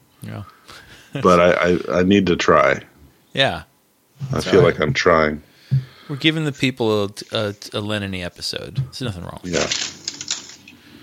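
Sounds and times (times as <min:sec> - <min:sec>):
speech: 0:00.2 - 0:10.0
sheet of paper shifted with crisp rustles and taps: 0:09.5 - 0:10.7.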